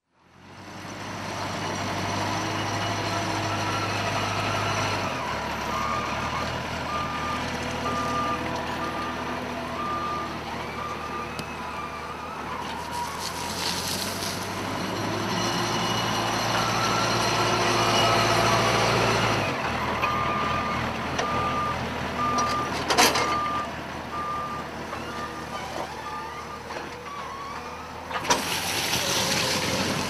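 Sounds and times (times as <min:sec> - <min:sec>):
JCB digger with pusher reversing: 0:00.2 - 0:30.0
JCB digger pushing sugar beet into a heap: 0:12.6 - 0:15.0, 0:28.3 - 0:30.0.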